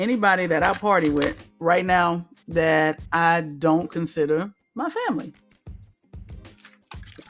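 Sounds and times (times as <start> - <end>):
speech: 0.0 - 5.4
person gulping a drink of water: 6.4 - 7.2.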